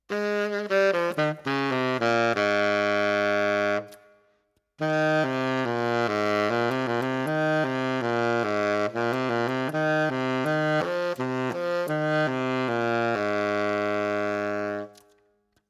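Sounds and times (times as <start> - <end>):
baritone saxophone: 0.0 - 4.2, 4.8 - 15.2.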